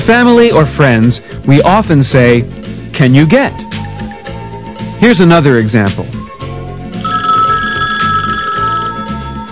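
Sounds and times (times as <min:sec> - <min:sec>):
speech: 0:00.0 - 0:03.8, 0:05.0 - 0:06.2
telephone bell ringing with a bright electronic trill: 0:07.0 - 0:09.5.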